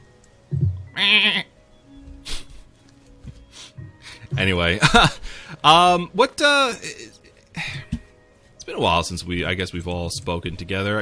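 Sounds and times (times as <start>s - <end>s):
sheep bleating: 1.0s - 1.5s
speech: 1.0s - 1.5s, 4.4s - 7.1s, 8.8s - 11.0s.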